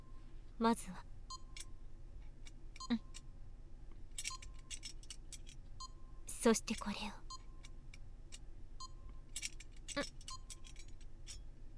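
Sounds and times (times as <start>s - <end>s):
speech: 0.6s - 1.1s, 6.4s - 7.2s, 10.0s - 10.2s
keys jangling: 4.1s - 5.6s, 9.3s - 11.5s.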